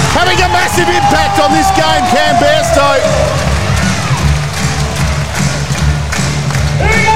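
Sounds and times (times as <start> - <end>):
basketball arena crowd cheering: 0.0 - 7.1
speech: 0.2 - 3.3.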